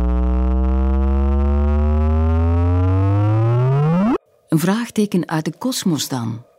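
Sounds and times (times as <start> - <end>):
gravitational wave chirp from merging black holes rendered as buzzy electronic tone: 0.0 - 4.2
speech: 4.5 - 6.5.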